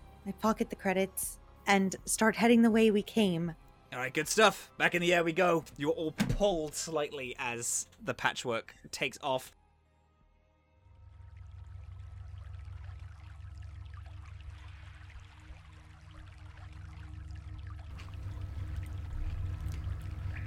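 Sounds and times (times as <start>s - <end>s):
speech: 0.2s - 9.6s
low droning rumble: 10.8s - 20.4s
stale sewer water dripping and trickling in a sewer overflow: 11.2s - 20.4s.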